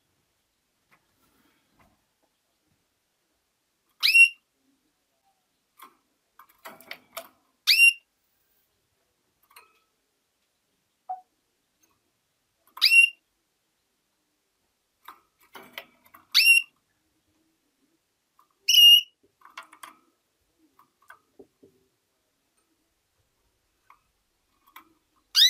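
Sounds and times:
faint soft sounds: 0.0s - 25.4s
female canary calls: 4.0s - 4.4s, 7.6s - 8.1s, 12.8s - 13.2s, 16.3s - 16.8s, 18.6s - 19.2s.

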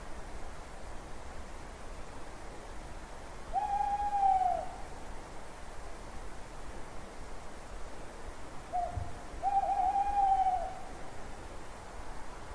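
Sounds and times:
quiet hissing background: 0.0s - 12.5s
owl hooting at night: 3.5s - 4.8s, 8.7s - 10.9s.

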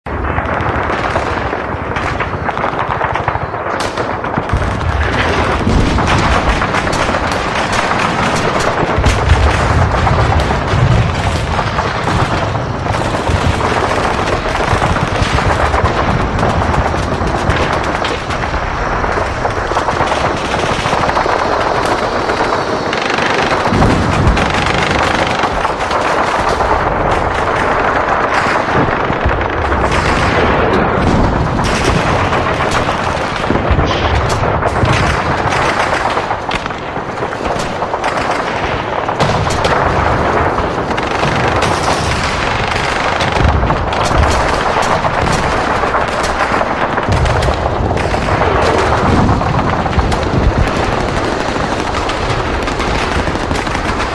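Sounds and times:
intense city battle ambience of war: 0.0s - 54.1s.

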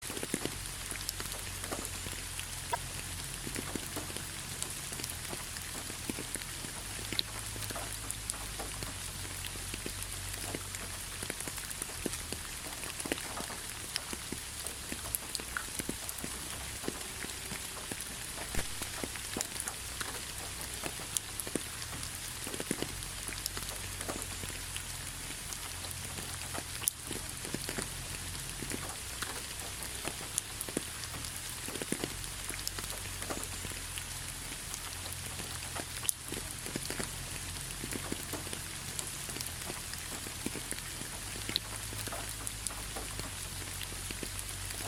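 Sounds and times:
gentle rain: 0.0s - 44.8s.

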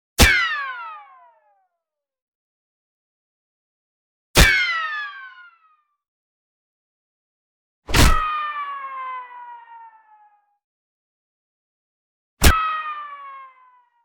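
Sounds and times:
bullet ricochet: 0.2s - 0.6s, 4.4s - 4.7s, 7.9s - 8.3s, 12.4s - 12.7s.

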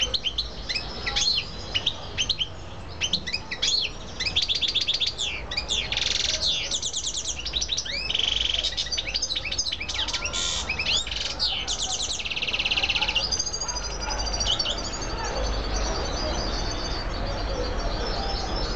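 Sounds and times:
female canary song with chirps, buzzy rolls and rapid trills: 0.0s - 18.7s.

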